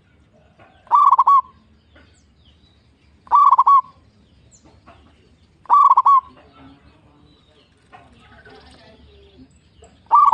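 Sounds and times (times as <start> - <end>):
zebra dove cooing: 0.0 - 1.6, 3.3 - 4.0, 5.6 - 6.6, 10.1 - 10.3.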